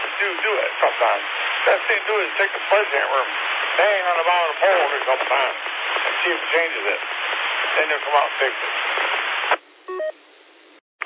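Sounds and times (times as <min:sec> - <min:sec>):
telephone line static: 0:00.0 - 0:11.0
speech: 0:00.2 - 0:09.3
telephone electronic double tone: 0:09.9 - 0:10.2.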